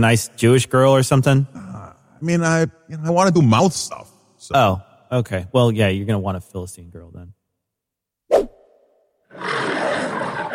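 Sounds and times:
speech: 0.0 - 1.6, 2.2 - 7.4
lion roaring: 9.3 - 10.5.

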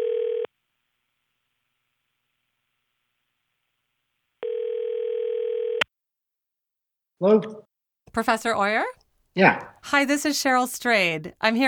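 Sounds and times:
steady electronic telephone tone: 0.0 - 0.5, 4.4 - 5.8
speech: 7.2 - 7.6, 8.2 - 11.6.

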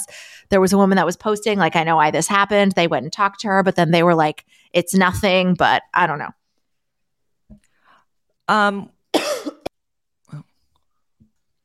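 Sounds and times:
speech: 0.0 - 6.4, 8.5 - 9.0
harsh coughing: 9.1 - 9.7
throat sounds: 10.3 - 10.8.

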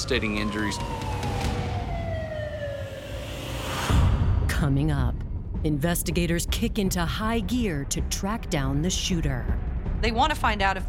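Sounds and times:
ambulance siren wailing: 0.0 - 3.8
speech: 0.1 - 1.1, 4.6 - 10.8.

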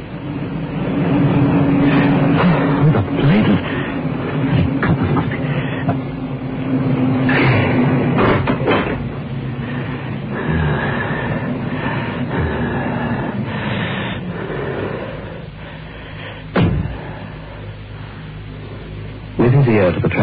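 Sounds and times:
car engine rumbling entering garage: 0.0 - 20.2
clunks and rattles: 1.9 - 6.1, 7.2 - 9.9
sharp knock: 16.5 - 17.0.

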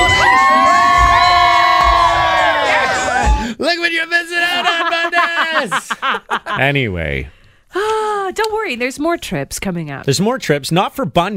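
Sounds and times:
crowd of women screaming and cheering: 0.0 - 3.6
laughter: 4.2 - 7.0
speech: 5.6 - 11.3.

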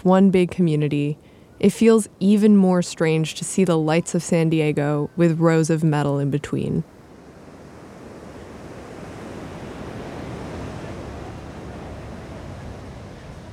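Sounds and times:
speech: 0.0 - 7.0
wind noise: 6.8 - 13.5
ocean waves breaking against a metal wall: 7.2 - 13.5.

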